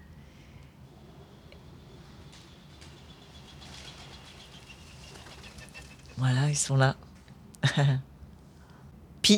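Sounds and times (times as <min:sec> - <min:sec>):
low outdoor rumble: 0:00.0 - 0:08.6
pigeons, turtle doves and sparrows chirping in a spring garden: 0:01.6 - 0:06.5
speech: 0:06.2 - 0:07.0, 0:07.7 - 0:08.1.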